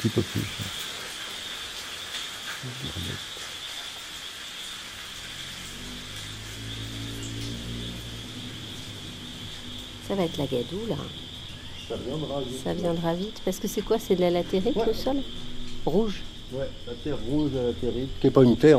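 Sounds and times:
speech: 0:00.0 - 0:00.9, 0:02.6 - 0:03.4, 0:10.1 - 0:11.2, 0:11.9 - 0:18.7
high insect drone: 0:00.0 - 0:18.7
rain falling in the rainforest: 0:00.0 - 0:18.7
low rumbling hum: 0:05.0 - 0:18.2.

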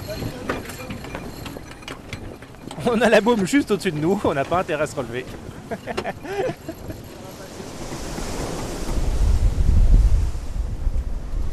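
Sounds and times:
constant gusting wind: 0:00.0 - 0:11.5
speech: 0:02.8 - 0:06.9
laughter: 0:05.5 - 0:07.6
wave crashing over a heeled sailboat in rough weather: 0:07.2 - 0:11.5.

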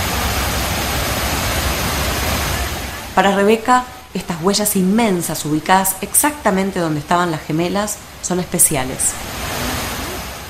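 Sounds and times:
water falling into pools of memorial fountains in New York: 0:00.0 - 0:03.2, 0:08.9 - 0:10.4
speech: 0:03.2 - 0:09.4.

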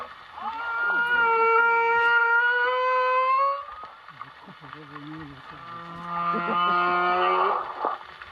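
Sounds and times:
male whale song from an underwater microphone over a boat's loudspeakers: 0:00.0 - 0:04.2, 0:05.6 - 0:08.0.

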